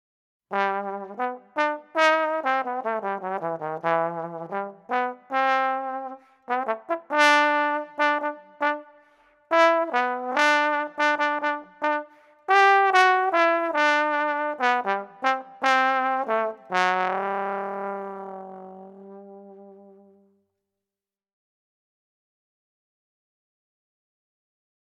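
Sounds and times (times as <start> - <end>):
slide trombone: 0.5 - 20.2.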